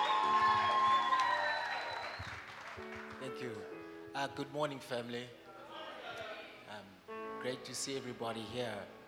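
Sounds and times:
audience applauding and cheering: 0.0 - 3.4
speech: 3.4 - 5.4, 7.4 - 9.0.

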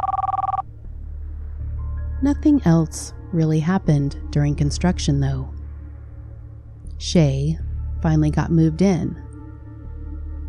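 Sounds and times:
cell phone ringing in a rapid warbling trill: 0.0 - 0.6
speech: 2.2 - 5.6, 7.0 - 9.2.

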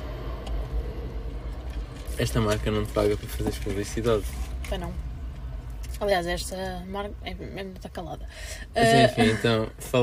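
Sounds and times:
low engine rumble of an airplane passing overhead outdoors: 0.0 - 5.9
speech: 2.2 - 5.1, 6.0 - 10.0.

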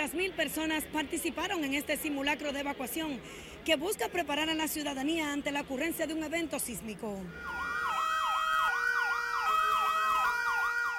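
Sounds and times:
speech: 0.1 - 7.7
emergency vehicle sirens wailing during evacuation drill: 7.3 - 10.9.

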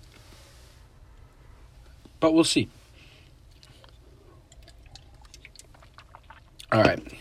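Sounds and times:
low steady hum: 0.0 - 7.1
speech: 2.2 - 2.8
person sipping water: 3.4 - 7.1
soft swallowing: 3.4 - 7.1.

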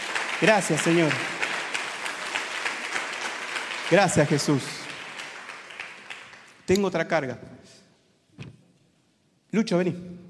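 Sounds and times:
audience applauding loudly: 0.0 - 6.7
speech: 0.4 - 1.4, 3.9 - 4.8, 6.7 - 7.5, 9.5 - 10.2.

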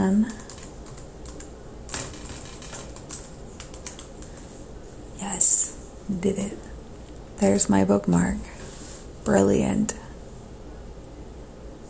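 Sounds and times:
speech: 0.0 - 0.4, 6.2 - 6.7, 7.4 - 8.5, 9.2 - 10.0
typing on a computer keyboard: 0.0 - 4.5.

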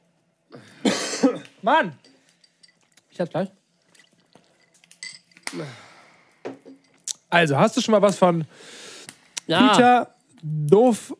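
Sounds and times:
person coughing in a rough throaty fit: 0.6 - 1.6
speech: 1.6 - 2.1, 3.2 - 3.6, 5.5 - 5.9, 7.3 - 8.8, 9.5 - 11.1.

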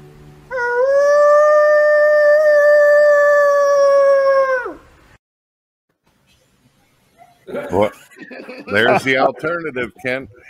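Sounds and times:
person imitating a wolf howl: 0.5 - 5.0
laughter: 7.4 - 10.4
speech: 8.8 - 10.4.

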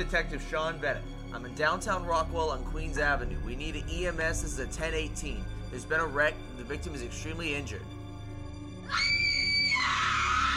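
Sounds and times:
speech: 0.0 - 8.0
man screaming: 8.9 - 10.5.

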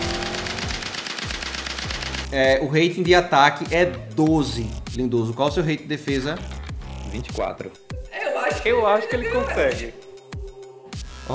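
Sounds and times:
rapid burst of rotating machine-gun fire: 0.0 - 2.3
speech: 2.3 - 7.8, 8.4 - 10.0.

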